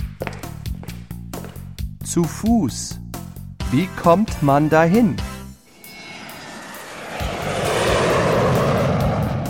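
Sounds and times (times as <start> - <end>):
speech: 2.1 - 3.0, 3.7 - 5.3
airplane engine roaring overhead: 5.6 - 9.4.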